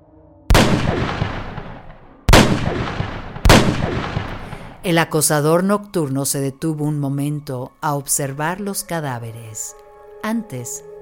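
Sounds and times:
22-caliber gunshots echoing: 0.5s - 4.9s
speech: 4.8s - 10.9s.

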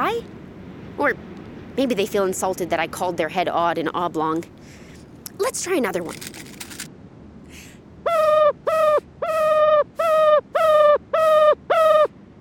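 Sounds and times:
speech: 0.0s - 0.4s, 1.0s - 4.8s, 5.4s - 6.5s
ruffed grouse call: 7.5s - 12.1s.

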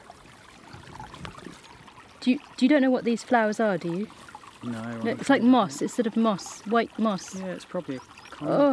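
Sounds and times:
small moorland stream trickling and babbling: 0.0s - 8.7s
speech: 2.2s - 8.7s.

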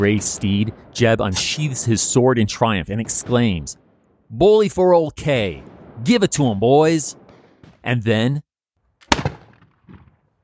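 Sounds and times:
speech: 0.0s - 7.2s, 7.8s - 8.4s
Union pistol firing a .44 caliber ball: 7.2s - 7.8s, 9.0s - 10.2s.

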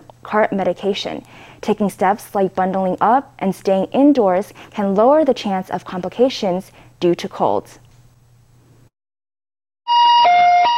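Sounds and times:
speech: 0.3s - 7.8s
ambulance siren: 9.9s - 10.7s.

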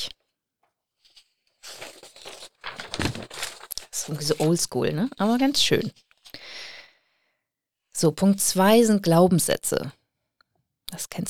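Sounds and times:
sheet of paper rustling and crinkling: 1.0s - 6.4s
speech: 4.0s - 6.0s, 8.0s - 10.0s, 11.0s - 11.2s.

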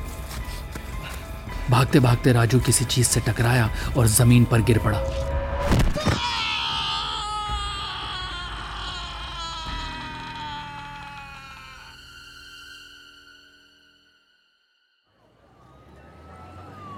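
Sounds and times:
speech: 1.7s - 6.2s
loud drawn-out echoing scream: 4.8s - 13.3s.

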